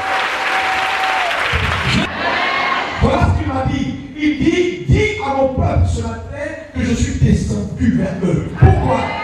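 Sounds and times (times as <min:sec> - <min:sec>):
congregation applauding during a church service: 0:00.0 - 0:02.5
speech: 0:03.8 - 0:09.1.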